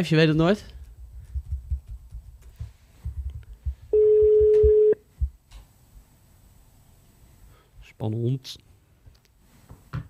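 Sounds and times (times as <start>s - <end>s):
speech: 0.0s - 0.7s, 8.0s - 8.7s
outgoing phone call ringback tone: 3.9s - 5.0s.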